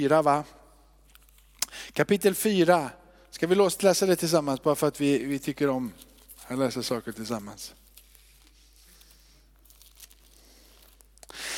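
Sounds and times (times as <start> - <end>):
speech: 0.0 - 0.6, 1.9 - 7.8
pages of a Bible being flipped: 1.1 - 1.6, 6.0 - 11.4.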